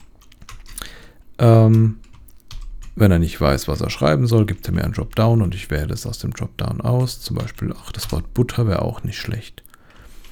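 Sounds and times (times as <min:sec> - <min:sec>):
computer keyboard typing while writing code: 0:00.0 - 0:10.3
speech: 0:01.4 - 0:02.0, 0:03.0 - 0:09.7.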